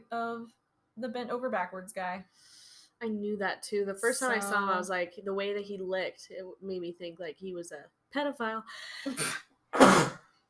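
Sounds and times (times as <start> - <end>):
speech: 0.1 - 10.1
person sneezing: 9.1 - 10.3.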